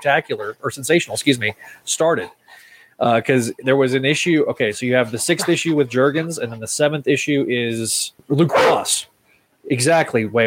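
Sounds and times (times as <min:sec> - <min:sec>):
speech: 0:00.0 - 0:10.4
dog barking: 0:08.5 - 0:09.0.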